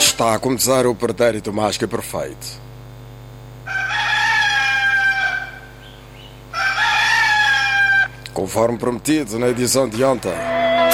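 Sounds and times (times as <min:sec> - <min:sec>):
speech: 0:00.2 - 0:02.7, 0:08.4 - 0:10.5
rooster crowing: 0:03.7 - 0:05.8, 0:06.5 - 0:08.2, 0:10.4 - 0:10.9.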